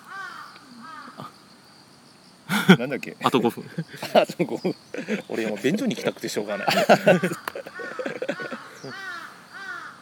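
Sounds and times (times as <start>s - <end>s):
crow cawing outdoors: 0.0s - 1.3s, 6.4s - 10.0s
laughter: 2.5s - 9.1s
speech: 2.7s - 7.7s.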